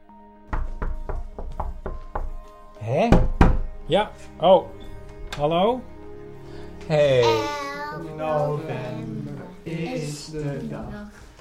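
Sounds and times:
children knocking on a door: 0.5s - 2.4s, 3.1s - 3.8s
speech: 2.8s - 3.3s, 3.9s - 4.8s, 5.4s - 5.9s, 6.8s - 11.2s.

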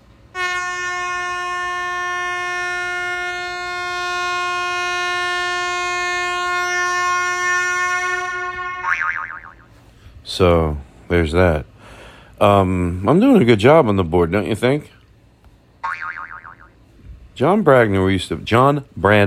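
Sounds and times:
loud sustained brassy horn blast: 0.3s - 8.9s
speech: 10.4s - 11.7s, 12.4s - 15.0s, 17.4s - 19.2s.

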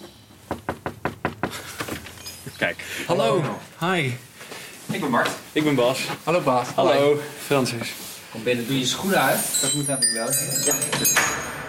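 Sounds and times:
knocking on a door: 0.4s - 2.0s
speech: 2.6s - 4.3s, 4.9s - 11.6s.

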